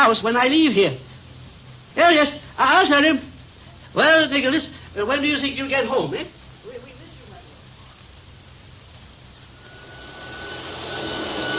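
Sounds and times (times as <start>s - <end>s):
speech: 0.1s - 1.1s, 2.0s - 3.3s, 3.9s - 7.0s
vacuum cleaner running: 9.5s - 11.5s.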